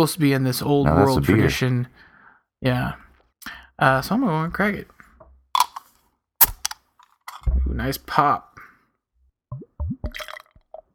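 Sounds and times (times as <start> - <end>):
speech: 0.0 - 5.0, 7.7 - 8.5
dark beer glugging out of a bottle: 9.5 - 10.9.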